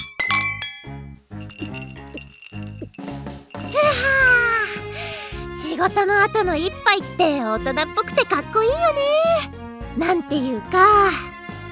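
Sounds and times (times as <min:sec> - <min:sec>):
glasses clinking together in a toast: 0:00.0 - 0:04.2
speech: 0:05.8 - 0:11.6.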